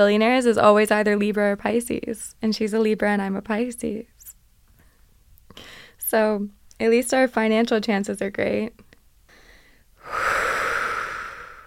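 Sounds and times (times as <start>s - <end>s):
speech: 0.0s - 4.1s, 5.6s - 8.8s
long deep breath drawn in as a breathy hiss: 5.6s - 6.0s, 9.3s - 11.6s.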